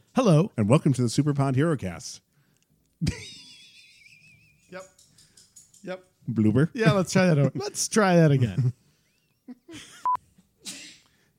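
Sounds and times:
speech: 0.2 - 2.3, 3.0 - 3.4, 5.8 - 8.8, 9.7 - 10.0
person sneezing: 10.6 - 11.2.

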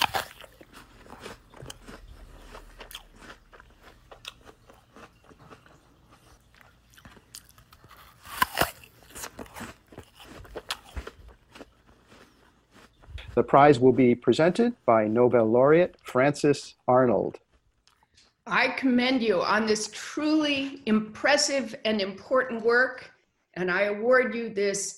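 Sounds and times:
people chewing and crunching food: 0.0 - 16.1, 17.4 - 18.4
speech: 13.4 - 17.4, 18.6 - 24.9.

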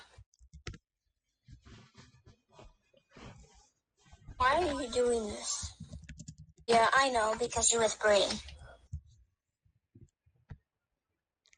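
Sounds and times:
speech: 4.4 - 5.7, 6.7 - 8.5
computer keyboard clicks: 5.8 - 7.1.

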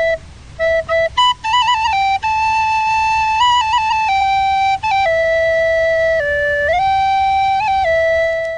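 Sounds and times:
solo flute or recorder playing a slow simple melody: 0.0 - 8.5.

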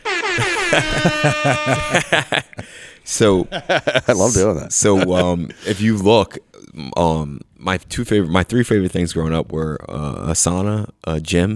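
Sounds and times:
loud brassy air horn blasts: 0.0 - 2.2
laughter: 0.0 - 6.0
speech: 0.4 - 11.5.

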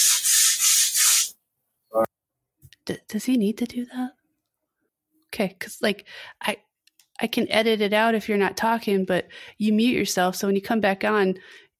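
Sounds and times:
hand sanding on wood: 0.0 - 1.4
speech: 2.9 - 4.1, 5.4 - 11.6.

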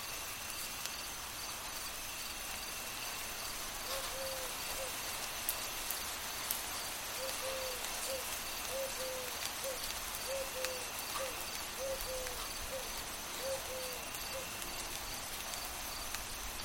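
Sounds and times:
light rain at night: 0.0 - 16.6
owl hooting: 3.9 - 5.0, 7.2 - 14.6.

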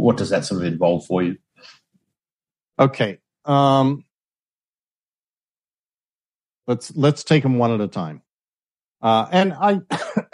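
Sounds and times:
speech: 0.0 - 1.8, 2.8 - 4.1, 6.7 - 8.2, 9.0 - 10.3
harsh throaty voiced coughs from a throat tickle: 9.9 - 10.3.

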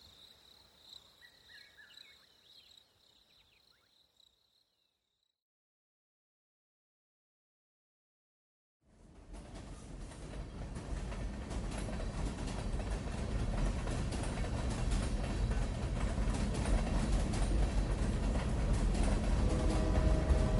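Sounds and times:
train rumbling along rails: 8.8 - 20.5.

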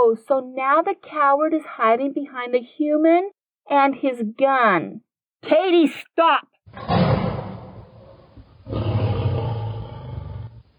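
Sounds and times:
speech: 0.0 - 7.1
tiger roaring: 6.7 - 10.7.

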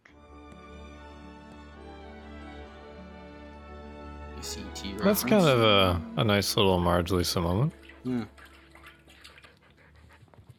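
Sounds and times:
speech: 4.4 - 8.4
watery hiss: 4.4 - 10.0
dog drinking water from a toilet bowl: 7.7 - 10.5.

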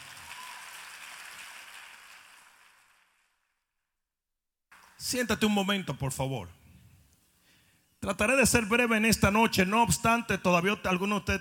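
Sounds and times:
large crowd applauding: 0.0 - 3.4
speech: 5.0 - 6.6, 8.0 - 11.3.

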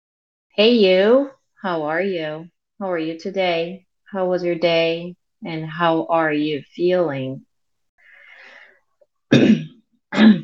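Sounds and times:
speech: 0.6 - 7.5
loud throat clearing: 9.3 - 10.4.

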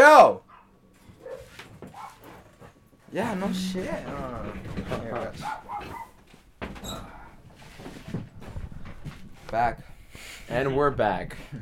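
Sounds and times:
dogs barking outside: 0.4 - 2.7, 3.3 - 6.2
voices: 3.1 - 5.5
speech: 3.1 - 6.0, 9.5 - 11.5.

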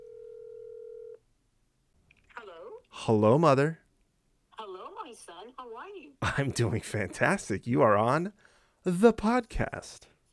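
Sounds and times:
steady electronic telephone tone: 0.0 - 1.2
speech: 3.0 - 3.8, 6.4 - 10.1.

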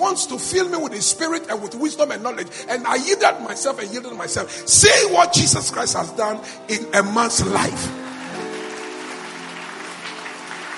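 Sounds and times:
speech: 0.2 - 8.1
crowd clapping as a clap offering: 7.6 - 10.7.

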